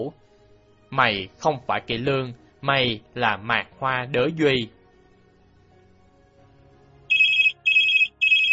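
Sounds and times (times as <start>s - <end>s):
speech: 0.0s - 0.2s, 0.9s - 4.8s
telephone ringing: 7.1s - 8.5s.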